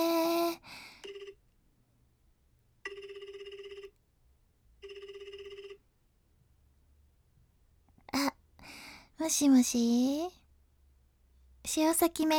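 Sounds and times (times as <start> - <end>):
phone dial tones: 1.0 - 1.4, 2.8 - 4.0, 4.8 - 5.8
speech: 9.2 - 10.4, 11.7 - 12.3.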